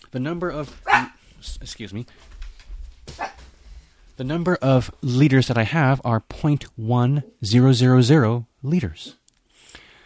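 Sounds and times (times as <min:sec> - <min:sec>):
speech: 0:00.1 - 0:02.5, 0:04.2 - 0:09.2
dog barking: 0:00.8 - 0:01.2, 0:03.2 - 0:03.4.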